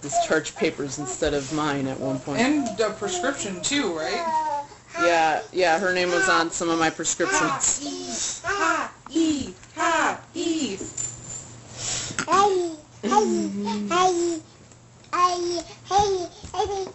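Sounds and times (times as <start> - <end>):
speech: 0.0 - 10.8, 12.3 - 14.5, 15.2 - 16.9
faint steady hum: 0.0 - 16.9
toddler babbling: 2.4 - 5.2, 7.2 - 9.0, 12.3 - 14.4, 15.1 - 16.9.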